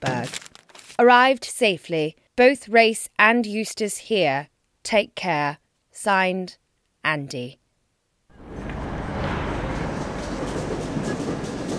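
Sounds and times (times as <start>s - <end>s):
speech: 0.0s - 0.4s, 1.0s - 7.6s
rhythmic clatter of train wheels and carriages: 8.4s - 11.7s
train arriving at a station: 8.4s - 11.7s.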